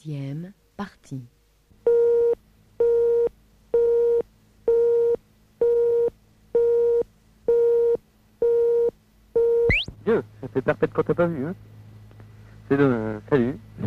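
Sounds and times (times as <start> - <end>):
speech: 0.0 - 1.4, 10.6 - 11.8, 12.7 - 13.8
answering machine beeps: 1.9 - 9.9.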